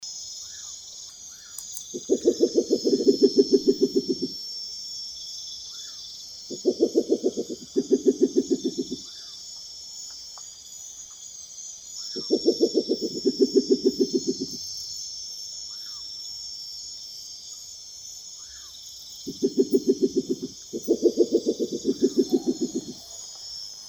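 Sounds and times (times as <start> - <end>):
Spectacled Owl call: 1.3 - 4.4, 5.7 - 9.4, 12.0 - 14.6, 18.4 - 23.8.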